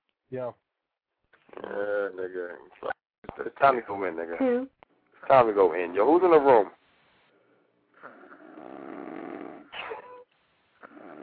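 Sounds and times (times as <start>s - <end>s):
speech: 0.3s - 0.7s, 1.5s - 6.8s
loud snoring with snorts: 8.0s - 10.2s, 10.8s - 11.2s.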